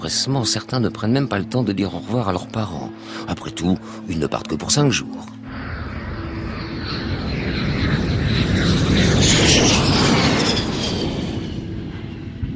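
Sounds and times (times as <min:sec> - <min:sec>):
speech: 0:00.0 - 0:05.6
Fairchild propeller airplane of the Uruguayan Air Force taking off: 0:05.5 - 0:12.5.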